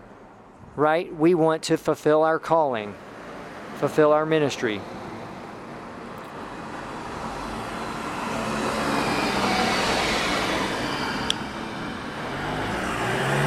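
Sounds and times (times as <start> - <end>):
speech: 0.8 - 3.1, 3.8 - 5.0
cars rushing past in a traffic roar: 2.8 - 13.4.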